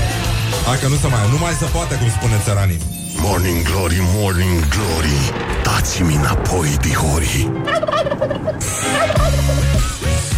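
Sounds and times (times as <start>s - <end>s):
speech: 0.7s - 10.0s
turkey gobbling: 7.5s - 10.0s.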